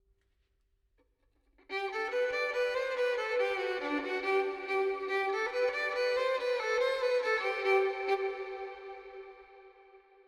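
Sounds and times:
synthesized General MIDI violin melody in four-four: 1.7s - 9.7s.

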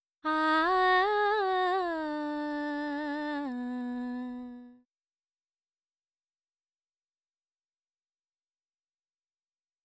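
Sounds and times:
dry female vocals in B minor: 0.2s - 4.9s.

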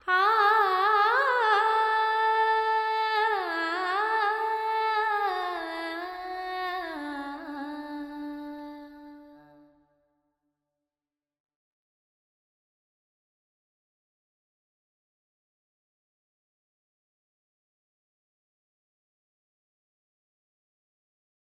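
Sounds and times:
woman singing with reverb: 0.0s - 9.7s.

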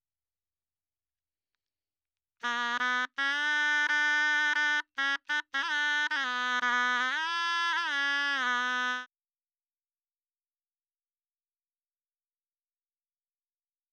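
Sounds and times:
dry shehnai melody in B minor: 2.4s - 9.1s.

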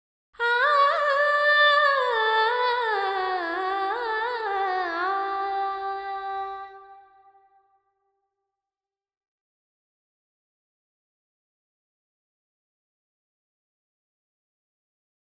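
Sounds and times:
female vocals: 0.4s - 7.2s.

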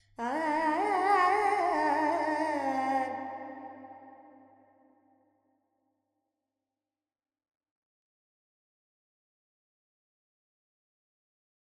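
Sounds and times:
Carnatic female alap singing in Lydian with reverb: 0.2s - 3.8s.

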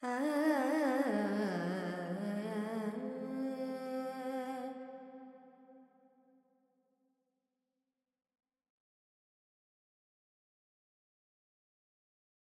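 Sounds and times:
female Carnatic alap singing in Purvi Kalyani with reverb: 0.0s - 4.8s.

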